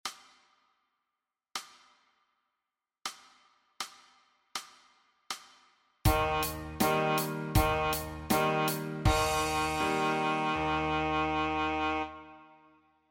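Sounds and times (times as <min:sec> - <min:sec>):
saxophone playing C: 0:06.1 - 0:12.9.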